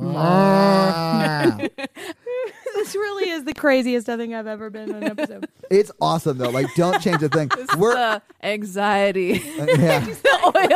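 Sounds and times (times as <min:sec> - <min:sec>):
person imitating a cow mooing: 0:00.0 - 0:01.6
speech: 0:00.2 - 0:00.7, 0:01.4 - 0:02.3, 0:02.9 - 0:10.7
laughter: 0:00.6 - 0:03.2, 0:04.9 - 0:08.2, 0:09.3 - 0:10.7.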